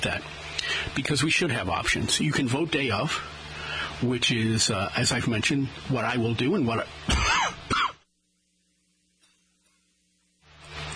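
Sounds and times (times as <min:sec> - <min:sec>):
speech: 0:00.0 - 0:03.4, 0:04.0 - 0:07.3
loud harsh cough into the microphone: 0:07.1 - 0:08.1.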